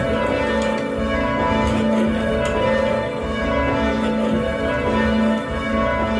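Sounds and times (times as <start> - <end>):
church tower bells rung by bell ringers: 0.0 - 6.1.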